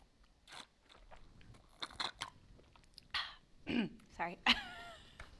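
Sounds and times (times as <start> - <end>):
slurping through a juice box straw: 0.4 - 3.0
speech: 4.2 - 4.7.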